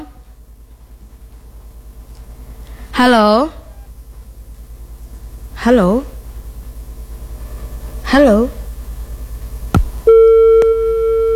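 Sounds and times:
speech: 0:03.0 - 0:03.6, 0:05.6 - 0:06.1, 0:08.2 - 0:08.6
telephone disconnect tone on a dropped call: 0:10.1 - 0:11.3.

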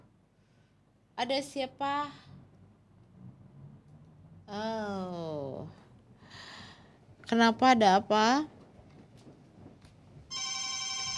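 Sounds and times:
speech: 0:01.2 - 0:02.3, 0:04.5 - 0:05.8, 0:07.3 - 0:08.6
phone call ringtone: 0:10.3 - 0:11.1.

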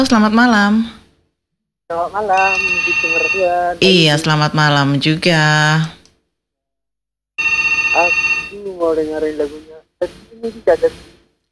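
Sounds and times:
speech: 0:00.0 - 0:01.0, 0:01.9 - 0:06.0, 0:08.8 - 0:11.1
telephone ringing for an incoming caller: 0:02.0 - 0:04.2, 0:07.4 - 0:08.8.

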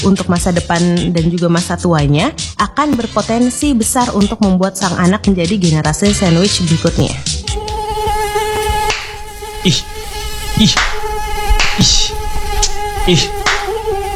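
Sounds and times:
speech: 0:00.0 - 0:07.7, 0:09.6 - 0:09.9, 0:10.6 - 0:11.0, 0:11.8 - 0:12.0, 0:13.0 - 0:13.4
many mosquitoes buzzing: 0:07.2 - 0:14.1
sharp slapping or tapping sounds: 0:08.0 - 0:09.8, 0:10.5 - 0:13.8.

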